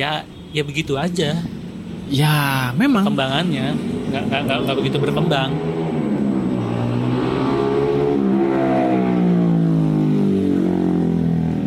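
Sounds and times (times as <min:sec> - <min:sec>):
speech: 0:00.0 - 0:05.8
MotoGP racing motorcycle engines roaring and revving through gears: 0:02.9 - 0:11.6.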